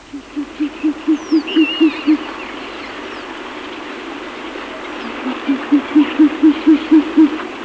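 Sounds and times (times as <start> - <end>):
Asio flammeus calling: 0.0 - 2.4, 5.0 - 7.4.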